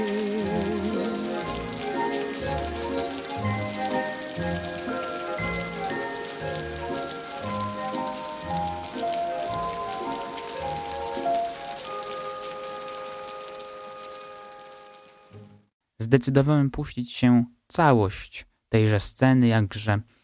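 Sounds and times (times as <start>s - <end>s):
lively orchestral melody: 0.0s - 15.7s
rain pattering on a hard surface in a 1952 film scene: 0.0s - 15.7s
speech: 16.1s - 20.2s.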